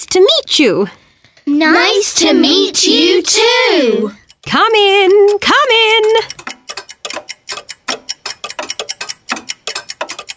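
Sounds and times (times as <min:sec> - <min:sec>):
speech: 0:00.1 - 0:06.4
many clocks ticking: 0:02.1 - 0:10.3.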